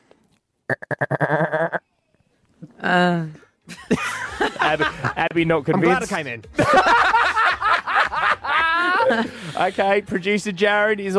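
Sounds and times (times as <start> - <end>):
person imitating goat bleats: 0.7 - 1.8
laughter: 3.7 - 9.9
speech: 4.7 - 7.0, 9.1 - 11.1.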